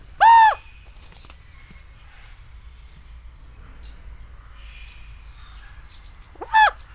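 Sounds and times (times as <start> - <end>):
raven calling at a zoo in Nyíregyháza: 0.2 - 0.6, 6.4 - 6.8.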